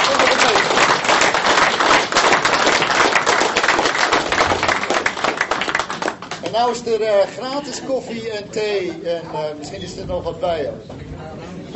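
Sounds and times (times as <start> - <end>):
sustained applause from a large group: 0.0 - 6.9
speech: 6.6 - 11.0.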